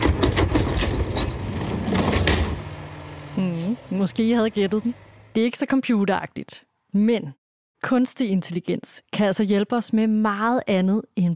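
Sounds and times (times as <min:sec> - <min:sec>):
scraping bangs of garbage truck emptying a bin: 0:00.0 - 0:03.0
garbage truck engine rumble while emptying a bin: 0:00.0 - 0:05.4
speech: 0:04.0 - 0:11.3.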